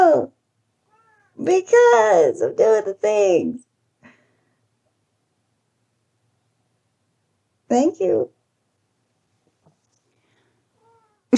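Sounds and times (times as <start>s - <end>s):
speech: 0.2s - 0.4s, 1.4s - 3.6s, 7.7s - 8.4s
cat giving a short soft meow: 0.9s - 1.4s, 10.8s - 11.3s
quiet shuffling: 9.0s - 11.2s.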